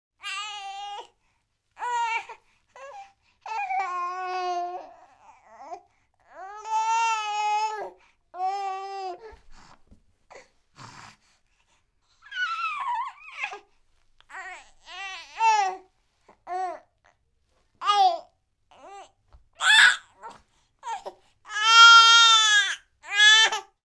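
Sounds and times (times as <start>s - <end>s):
4-month-old human baby fussing and crying: 1.8s - 9.7s, 12.2s - 13.7s, 14.3s - 17.2s, 17.8s - 23.8s.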